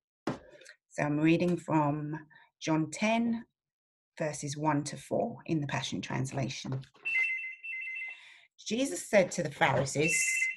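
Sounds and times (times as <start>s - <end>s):
speech: 1.0s - 3.5s, 4.2s - 7.1s, 8.7s - 10.5s
telephone ringing with electronic trilling tone: 7.1s - 8.2s.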